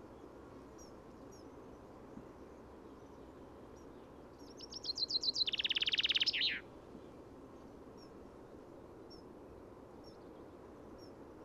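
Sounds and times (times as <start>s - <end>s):
common chaffinch Fringilla coelebs singing: 3.8s - 6.6s.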